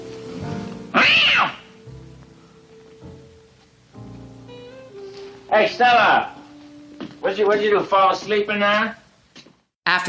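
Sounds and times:
cat meowing: 0.9s - 1.8s
speech: 5.5s - 6.4s, 7.2s - 9.0s, 9.8s - 10.0s.

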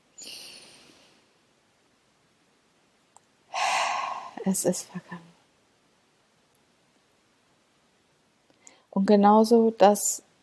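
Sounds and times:
slow deep breath in and out: 0.2s - 1.2s, 3.5s - 4.6s
speech: 4.5s - 5.3s, 9.0s - 10.2s.

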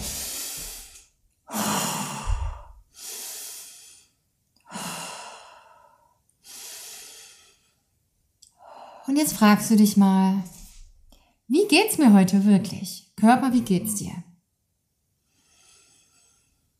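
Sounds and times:
slow deep breaths into the belly: 0.0s - 9.1s, 15.2s - 16.7s
speech: 9.1s - 10.6s, 11.7s - 14.3s.

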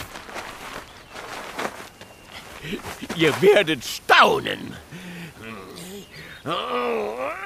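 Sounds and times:
rustling: 0.0s - 3.9s
footsteps shuffling as people step aside to line up: 0.0s - 4.1s
speech: 2.6s - 5.1s, 6.4s - 7.1s.

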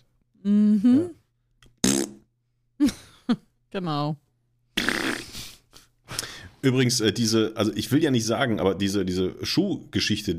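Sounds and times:
speech: 0.4s - 1.2s, 3.3s - 4.2s, 6.6s - 10.3s
person blowing a loud buzzing raspberry imitating a fart: 1.8s - 2.3s, 4.8s - 5.6s.

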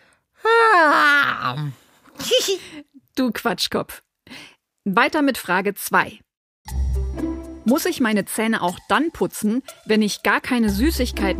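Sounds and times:
loud drawn-out yawn: 0.4s - 2.6s
speech: 1.4s - 6.8s, 7.7s - 11.3s.

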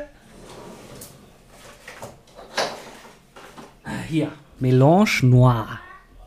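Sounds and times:
kitchen drawer sliding open with a sharp clack: 0.2s - 3.7s
speech: 4.1s - 5.8s.

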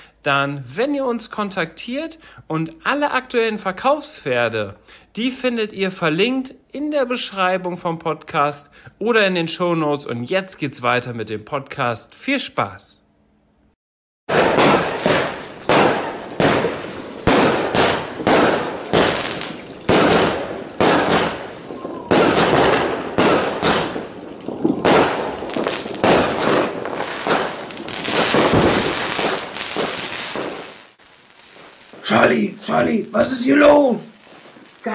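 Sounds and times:
speech: 0.2s - 13.0s, 32.3s - 34.1s
New Year's fireworks and firecrackers banging: 14.3s - 34.9s.

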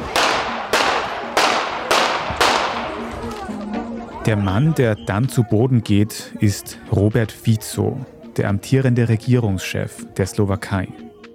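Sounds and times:
pistol shots: 0.0s - 3.1s
speech: 4.3s - 11.0s.

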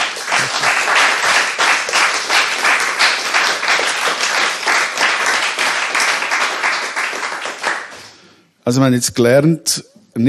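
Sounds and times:
audience applause: 0.0s - 8.1s
speech: 8.7s - 10.2s.

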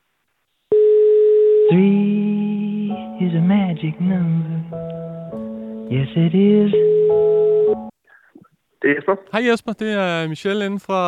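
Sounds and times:
telephone ringing tone while placing a call: 0.7s - 2.1s, 6.7s - 7.9s
speech: 1.7s - 1.9s, 3.2s - 7.9s, 8.8s - 11.0s.

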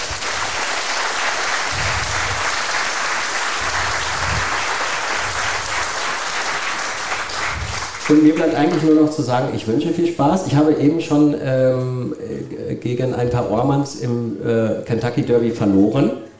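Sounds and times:
audience applause: 0.0s - 9.2s
speech: 8.1s - 16.2s.

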